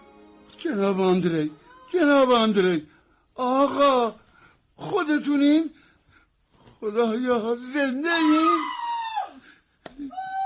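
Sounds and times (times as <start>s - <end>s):
speech: 0.5s - 4.2s, 4.8s - 5.8s, 6.8s - 8.8s
woman in labor screaming: 8.1s - 9.4s, 10.0s - 10.4s.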